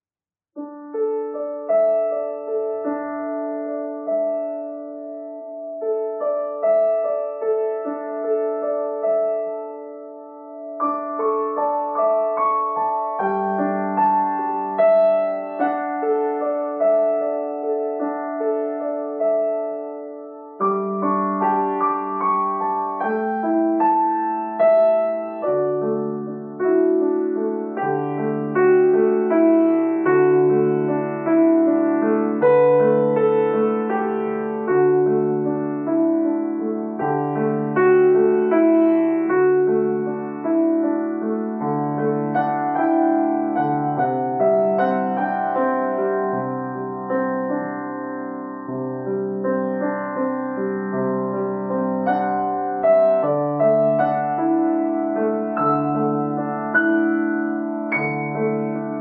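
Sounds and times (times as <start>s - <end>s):
piano playing: 0.6s - 59.0s.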